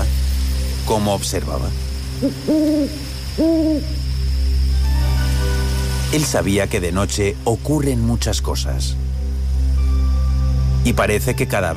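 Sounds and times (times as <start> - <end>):
steady hum of night ambience: 0.0 - 11.7
speech: 0.9 - 4.0, 6.1 - 9.1, 10.8 - 11.7
owl hooting in a forest: 2.2 - 4.2.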